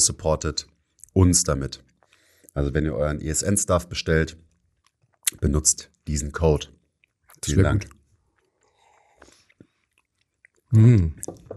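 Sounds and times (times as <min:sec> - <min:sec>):
speech: 0:00.0 - 0:01.9, 0:02.6 - 0:04.5, 0:05.3 - 0:06.8, 0:07.4 - 0:08.0, 0:10.7 - 0:11.5
man chewing a protein bar: 0:01.9 - 0:02.5, 0:04.5 - 0:05.4, 0:06.9 - 0:11.5.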